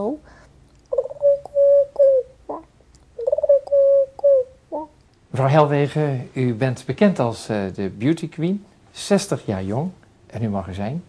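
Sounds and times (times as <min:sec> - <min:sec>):
person imitating pigeon cooing: 0:00.9 - 0:05.0
speech: 0:05.4 - 0:11.0.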